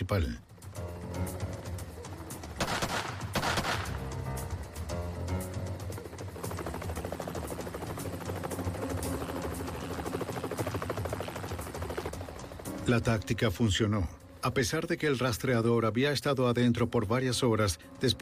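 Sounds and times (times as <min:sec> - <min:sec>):
speech: 0:00.1 - 0:00.5, 0:12.9 - 0:18.2
helicopter rotor thumping while hovering above a barn: 0:02.2 - 0:12.8
loud rapid burst of sniper gunfire: 0:02.6 - 0:04.0.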